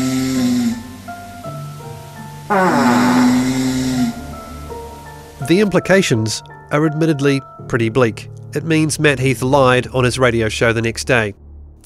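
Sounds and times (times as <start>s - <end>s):
loud rasping snoring with a buzzing tonal quality: 0.0s - 1.0s, 2.5s - 4.8s
speech: 2.5s - 2.8s, 5.5s - 11.8s.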